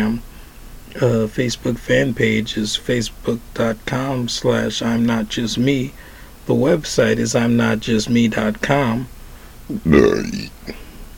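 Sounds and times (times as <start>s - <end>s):
speech: 1.0s - 10.8s
faint short vocal noise: 9.7s - 10.9s
loud gravelly burp: 9.8s - 10.8s.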